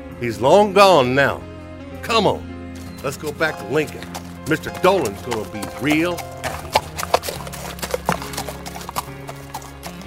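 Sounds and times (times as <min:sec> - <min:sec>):
speech: 0:00.2 - 0:06.3
horse hooves clip-clopping at a walking pace: 0:02.8 - 0:10.0.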